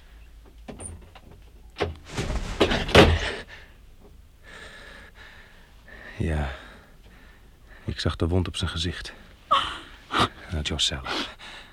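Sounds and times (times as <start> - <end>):
door being opened slightly: 0.7 - 3.4
scraping and rustling of door movement: 1.9 - 3.4
door thump: 2.2 - 3.4
speech: 6.2 - 6.6, 7.9 - 9.3, 10.5 - 11.4.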